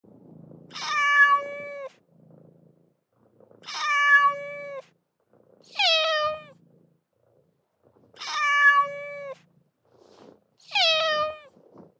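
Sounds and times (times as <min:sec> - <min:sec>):
cat meowing: 0:00.7 - 0:02.0, 0:03.6 - 0:04.9, 0:05.7 - 0:06.6, 0:08.2 - 0:09.4, 0:10.6 - 0:11.5.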